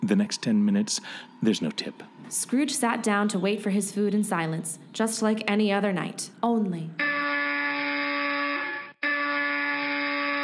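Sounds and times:
speech: 0.0s - 7.1s
harsh electric apartment door buzzer: 7.0s - 10.4s.

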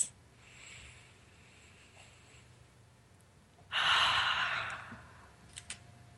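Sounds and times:
deep breath during a guided relaxation exercise: 0.4s - 2.6s, 3.7s - 5.4s.

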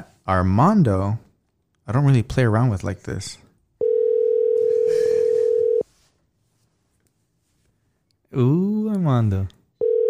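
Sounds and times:
speech: 0.3s - 1.2s, 1.9s - 3.4s, 8.3s - 9.6s
telephone dial tone during a phone call: 3.8s - 5.8s, 9.8s - 10.0s.

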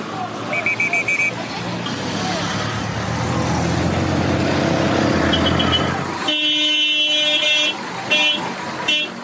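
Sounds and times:
congested road traffic engine rumble: 0.0s - 9.2s
car horns honking in a traffic jam: 0.5s - 1.4s, 5.2s - 9.2s.

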